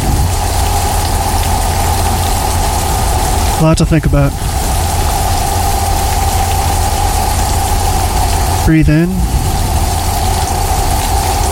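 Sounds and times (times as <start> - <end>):
low rumbling hum: 0.0 - 11.4
steady dense rain hiss: 0.0 - 11.4
speech: 3.6 - 4.5, 8.7 - 9.4.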